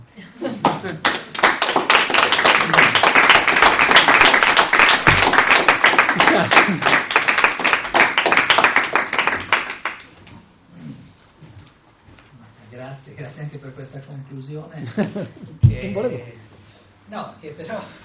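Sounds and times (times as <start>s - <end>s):
laughter: 0.2s - 1.4s, 6.1s - 7.1s, 14.7s - 15.6s
speech: 0.8s - 1.2s, 14.7s - 15.6s, 17.1s - 18.0s
audience applause: 1.0s - 10.1s.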